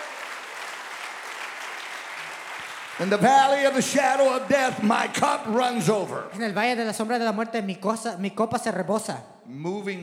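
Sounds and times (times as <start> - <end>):
congregation clapping hands during a bilingual church service: 0.0 - 5.4
speech: 3.0 - 10.0.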